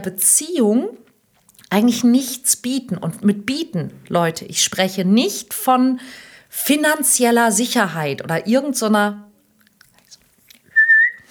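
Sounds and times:
speech: 0:00.0 - 0:01.0, 0:01.7 - 0:09.3
person giving a short clear whistle: 0:10.7 - 0:11.2.

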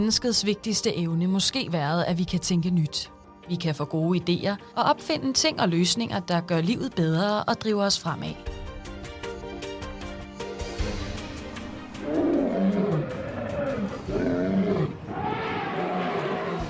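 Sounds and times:
speech: 0:00.0 - 0:08.6
faint tonal musical bed: 0:00.0 - 0:15.2
deep growling lion roars: 0:12.0 - 0:16.6.

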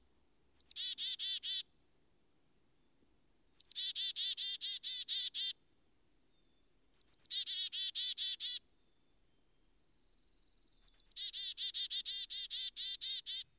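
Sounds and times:
chickadees calling: 0:00.6 - 0:01.6, 0:03.6 - 0:05.6, 0:07.0 - 0:08.6, 0:10.8 - 0:13.5.

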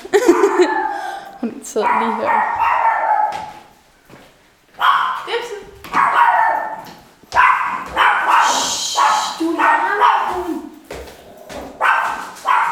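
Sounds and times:
laughter: 0:00.0 - 0:01.2
small dog barking: 0:00.2 - 0:01.2, 0:01.8 - 0:03.7, 0:04.8 - 0:05.3, 0:05.9 - 0:10.6, 0:11.8 - 0:12.7
speech: 0:01.8 - 0:02.6.

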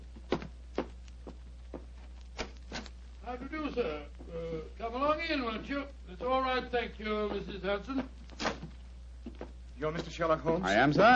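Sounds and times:
footsteps on stairs: 0:00.0 - 0:02.2
speech: 0:03.3 - 0:08.2, 0:09.8 - 0:11.1.

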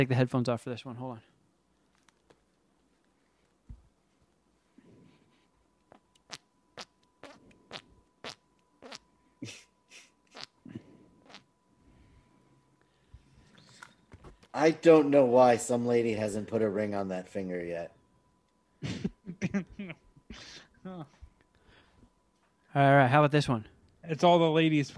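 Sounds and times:
speech: 0:00.0 - 0:01.3, 0:14.6 - 0:18.0, 0:20.8 - 0:21.2, 0:22.8 - 0:24.9
fart noises squeezed out with the shoulder and neck: 0:05.9 - 0:09.0, 0:10.3 - 0:11.5.

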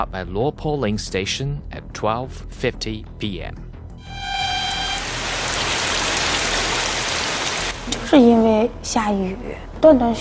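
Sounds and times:
speech: 0:00.0 - 0:04.2, 0:07.9 - 0:10.1
faint sustained tone: 0:04.0 - 0:05.8
heavy rain near Xuanhua Station in China: 0:04.5 - 0:08.1.

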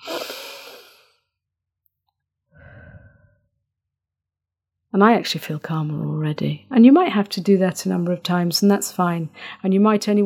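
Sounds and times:
deep breathing during an anxiety-calming exercise: 0:00.0 - 0:01.2, 0:02.5 - 0:03.5
speech: 0:04.9 - 0:10.2.

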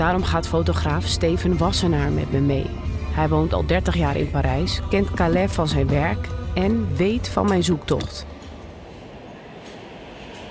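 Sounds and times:
speech: 0:00.0 - 0:08.4
rhythmic rail noise: 0:03.8 - 0:10.4
high-speed train passing: 0:03.9 - 0:10.4.

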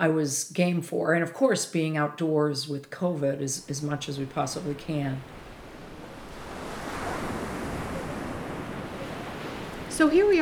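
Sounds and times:
speech: 0:00.0 - 0:05.4, 0:10.0 - 0:10.3
wind: 0:03.2 - 0:10.3
ocean surf washing onto a beach at Assateague National Seashore in Maryland: 0:03.6 - 0:10.3.

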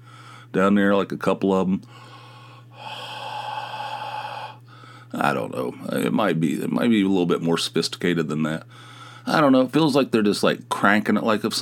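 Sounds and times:
speech: 0:00.5 - 0:02.1, 0:05.1 - 0:11.6
low hum: 0:01.8 - 0:06.3
person imitating heavy breathing with a raspy exhale: 0:02.2 - 0:05.0.

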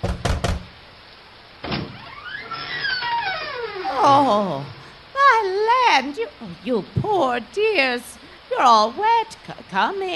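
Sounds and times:
front door thunk: 0:00.0 - 0:00.7, 0:01.6 - 0:02.0
front door hinge creaking: 0:01.6 - 0:04.8
speech: 0:06.0 - 0:10.1.

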